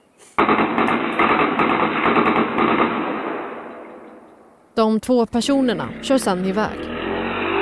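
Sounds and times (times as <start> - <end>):
automatic gunfire: 0.4 - 4.1
gunshot echo: 0.4 - 4.3
speech: 4.8 - 7.0.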